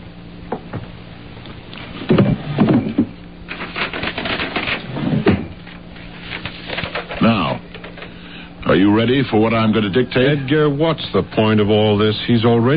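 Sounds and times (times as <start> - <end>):
drawer contents clattering: 2.6 - 8.1
speech: 8.7 - 12.7.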